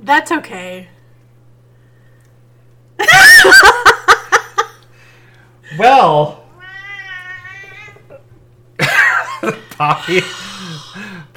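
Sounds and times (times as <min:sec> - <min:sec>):
speech: 0:00.1 - 0:01.0, 0:05.7 - 0:06.4, 0:09.4 - 0:10.5
laughter: 0:03.0 - 0:04.9, 0:08.8 - 0:11.1
cat meowing: 0:06.6 - 0:08.2.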